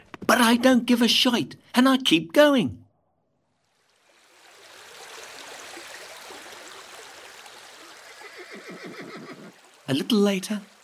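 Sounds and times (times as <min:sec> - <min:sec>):
speech: 0:00.5 - 0:02.8, 0:09.9 - 0:10.7
rushing water of a clear brown river: 0:03.5 - 0:10.8
horse whinnying in a river: 0:08.1 - 0:09.5.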